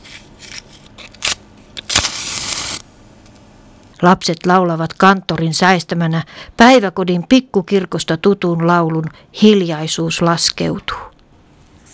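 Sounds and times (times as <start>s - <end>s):
short scraping strike lighting a candle: 0.0s - 2.8s
crackling hissing flare of a candle being lit by hand: 1.8s - 2.9s
speech: 4.0s - 11.1s.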